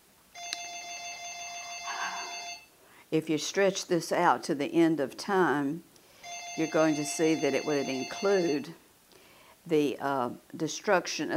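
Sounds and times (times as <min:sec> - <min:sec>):
electronic telephone ring: 0:00.4 - 0:02.7, 0:06.2 - 0:08.8
speech: 0:03.1 - 0:05.9, 0:06.6 - 0:08.8, 0:09.6 - 0:11.3.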